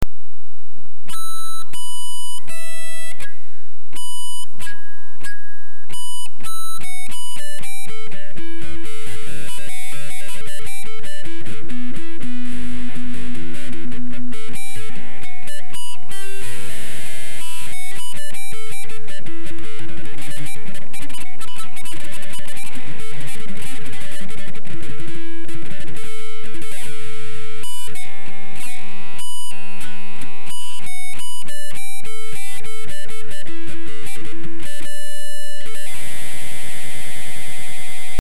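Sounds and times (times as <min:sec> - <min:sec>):
clean harmonics: 0:00.0 - 0:38.1.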